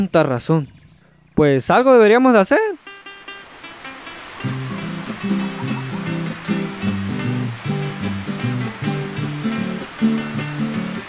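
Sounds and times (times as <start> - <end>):
speech: 0.0 - 0.8, 1.4 - 2.7
steady rushing water like a river current: 2.4 - 11.0
melodic musical line: 4.4 - 11.0.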